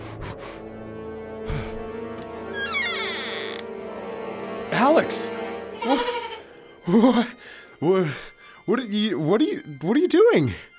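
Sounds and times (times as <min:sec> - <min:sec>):
speech: 0:04.7 - 0:06.1, 0:06.9 - 0:10.7
goat bleating: 0:05.8 - 0:06.4.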